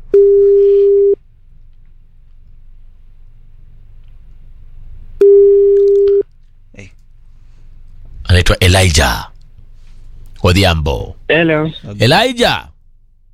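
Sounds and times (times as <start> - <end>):
faint low hum: 0.0 - 13.3
telephone ringback tone while placing a call: 0.1 - 1.2
speech: 8.6 - 9.3, 10.4 - 12.7.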